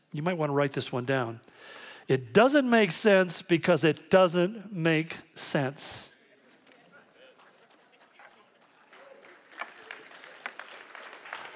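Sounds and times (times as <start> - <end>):
speech: 0.1 - 6.1
audience applause: 6.9 - 11.5.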